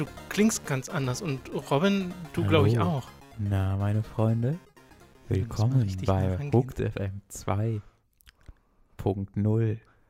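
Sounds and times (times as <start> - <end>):
speech: 0.0 - 4.7, 5.3 - 7.9, 9.0 - 9.9
mouth clicks: 8.1 - 8.6
soft wet lip smacks: 8.1 - 8.6.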